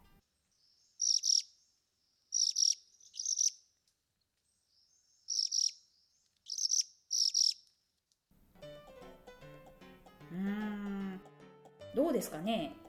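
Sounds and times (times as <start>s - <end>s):
Ryukyu minivet trilling call: 1.0s - 1.5s, 2.3s - 3.6s, 5.3s - 5.8s, 6.5s - 7.6s
speech: 12.1s - 12.8s.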